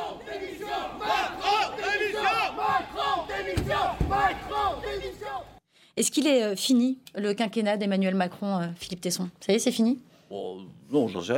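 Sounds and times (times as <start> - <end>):
angry protesters shouting and jeering outside the prefecture of Haute-Loire in the evening: 0.0 - 5.6
sharp thump: 3.5 - 4.4
speech: 6.0 - 11.3.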